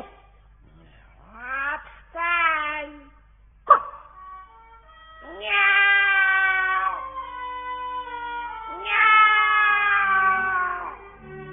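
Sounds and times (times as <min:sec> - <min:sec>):
cat meowing: 0:01.2 - 0:02.8, 0:05.2 - 0:11.5.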